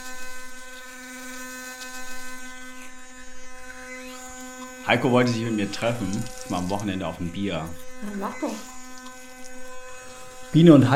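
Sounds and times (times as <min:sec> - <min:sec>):
electric toothbrush buzzing: 0:00.0 - 0:10.9
speech: 0:04.9 - 0:08.7, 0:10.5 - 0:10.9.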